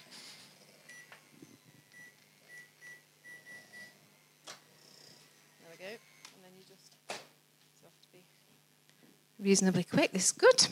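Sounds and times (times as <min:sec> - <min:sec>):
microwave oven beeping while being programmed: 0:00.0 - 0:04.6
soft hum: 0:00.0 - 0:10.7
speech: 0:09.4 - 0:10.7.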